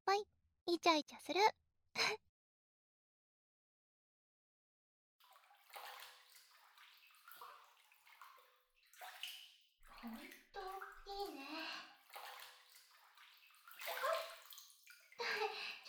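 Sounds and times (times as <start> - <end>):
speech: 0.1 - 2.2, 10.0 - 11.7
hot water running into a bathtub: 5.2 - 15.8.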